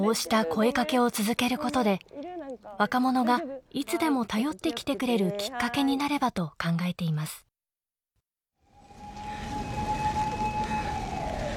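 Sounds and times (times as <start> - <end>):
speech: 0.0 - 7.4
police and ambulance sirens passing in a city: 8.7 - 11.5.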